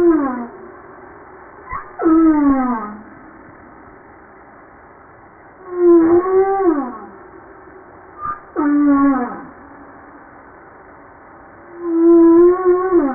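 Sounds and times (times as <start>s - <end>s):
humpback whale song: 0.0s - 0.8s, 1.7s - 3.6s, 5.6s - 7.3s, 8.2s - 9.8s, 11.7s - 13.1s
soft background hiss: 0.0s - 13.1s.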